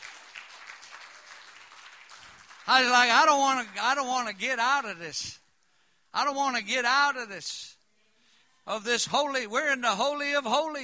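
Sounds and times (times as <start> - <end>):
church service audience clapping for a worship team: 0.0 - 4.9
speech: 2.7 - 5.4, 6.1 - 7.7, 8.7 - 10.8.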